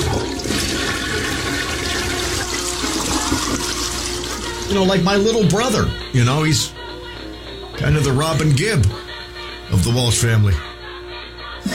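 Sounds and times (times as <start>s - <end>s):
toilet flushing with rush of water: 0.0s - 5.1s
speech: 4.7s - 6.8s, 7.8s - 9.0s, 9.7s - 10.7s.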